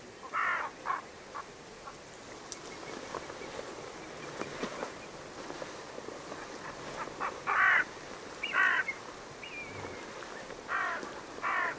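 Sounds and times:
steady low hiss: 0.0s - 11.7s
bird harsh raspy calls: 0.2s - 2.0s, 6.4s - 10.1s, 10.7s - 11.7s.

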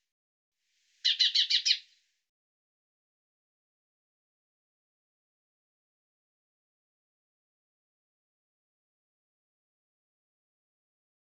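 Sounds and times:
bird pulsed scratchy chirps: 1.0s - 1.9s.

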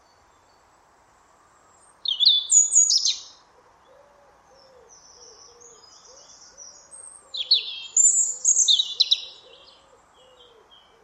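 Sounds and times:
European robin singing: 1.8s - 3.4s, 4.9s - 11.0s.

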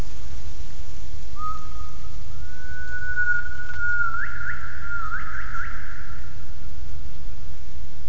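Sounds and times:
constant low rumbling noise: 0.0s - 8.0s
gibbon whistled call: 1.4s - 6.2s.

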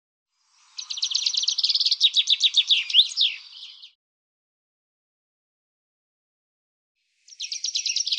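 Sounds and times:
common chaffinch singing: 0.4s - 4.0s, 7.2s - 8.1s.

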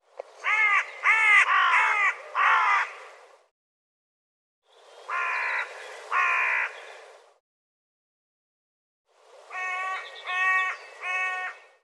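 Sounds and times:
bird giving harsh hoarse cawing calls: 0.4s - 3.1s, 5.1s - 7.1s, 9.5s - 11.8s.

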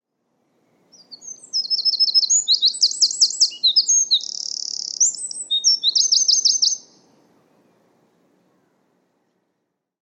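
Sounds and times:
bird trilling song of repeated looping notes: 0.9s - 7.8s.

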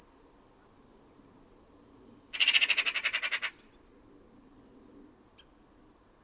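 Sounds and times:
bird rattling call: 2.3s - 3.7s.

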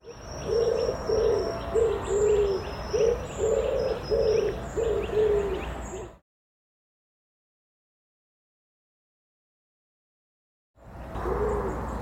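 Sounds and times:
bird calling with low soft cooing notes: 0.0s - 6.2s, 11.1s - 11.9s.

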